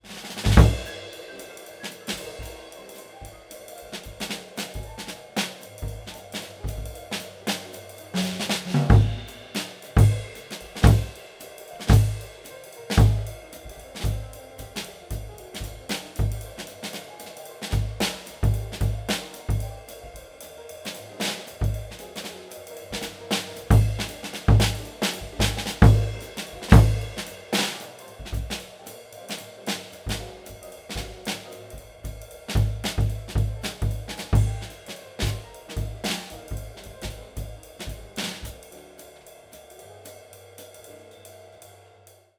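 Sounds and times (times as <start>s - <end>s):
kick drum beater: 0.4s - 1.1s, 4.0s - 5.2s, 5.8s - 7.1s, 8.2s - 11.2s, 11.9s - 16.7s, 17.8s - 20.3s, 21.6s - 22.1s, 23.0s - 28.8s, 30.0s - 38.6s.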